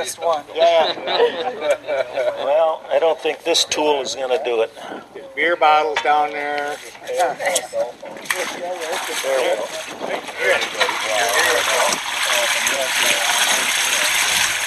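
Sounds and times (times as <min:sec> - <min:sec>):
speech: 0:00.0 - 0:13.8
laughter: 0:00.5 - 0:03.0
water rushing through a drain: 0:08.2 - 0:14.6.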